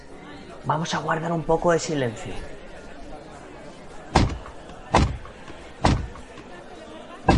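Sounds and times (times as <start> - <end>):
speech: 0.6 - 2.6
low murmur of a waiting crowd: 1.4 - 7.3
heavy resonant ceremonial knocks on a door: 4.2 - 6.4.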